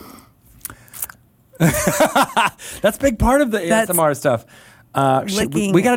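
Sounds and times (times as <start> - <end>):
wet licking on a boxed tabletop role-playing game core rulebook gift set: 0.6 - 1.2
laughter: 1.6 - 2.6
speech: 1.6 - 5.9.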